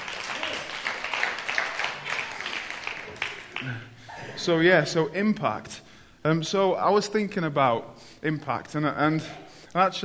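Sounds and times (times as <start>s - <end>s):
audience applause: 0.0s - 3.9s
speech: 3.6s - 10.0s.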